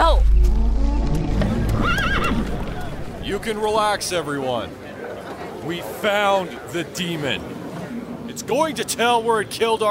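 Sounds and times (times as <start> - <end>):
constant low rumble: 0.0 - 4.0
horse whinnying: 1.5 - 3.2
speech: 3.4 - 4.8, 5.6 - 7.6, 8.4 - 9.9.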